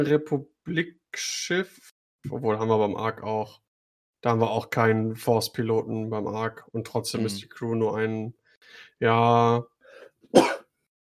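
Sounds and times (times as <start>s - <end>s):
speech: 0.0s - 3.6s, 4.2s - 9.7s, 10.3s - 10.6s
person sneezing: 10.3s - 10.7s.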